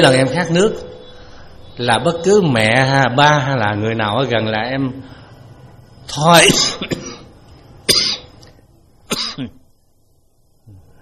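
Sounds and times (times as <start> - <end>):
speech: 0.0 - 0.9, 1.8 - 5.2, 6.1 - 7.0, 9.4 - 9.6
ill monk coughing during a Buddhist dharma talk: 6.4 - 7.3, 7.9 - 8.4, 9.1 - 9.6.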